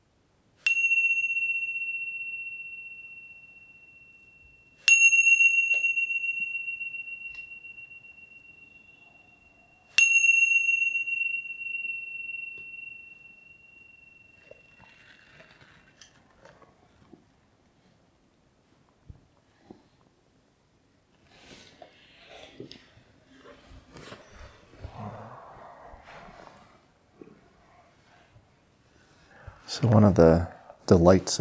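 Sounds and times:
meditation bell ringing to end session: 0:00.6 - 0:16.2
speech: 0:29.8 - 0:31.3.

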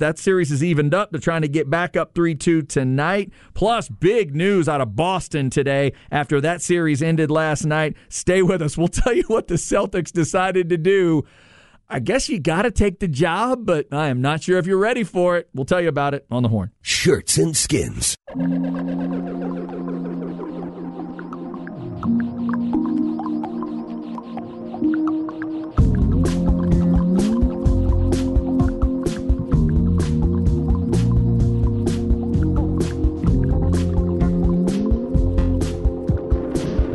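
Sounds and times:
speech: 0:00.0 - 0:20.0
music track with sliding tones: 0:18.3 - 0:36.9
sharp rhythmic beat: 0:18.7 - 0:36.9
watery dripping and splashing sounds in a music track: 0:21.1 - 0:34.7.

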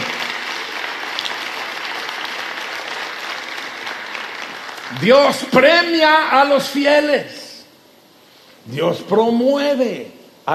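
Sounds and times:
audience applause at a Christian church service: 0:00.0 - 0:05.9
speech: 0:04.9 - 0:07.4, 0:08.7 - 0:10.5.

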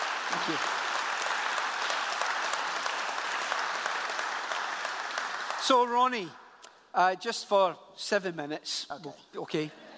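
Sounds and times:
audience applause: 0:00.0 - 0:06.1
speech: 0:00.3 - 0:00.8, 0:05.7 - 0:09.8.

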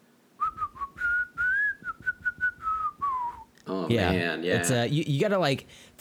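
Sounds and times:
person whistling a short wavering tune with tongue between teeth: 0:00.4 - 0:03.5
speech: 0:03.7 - 0:05.9.

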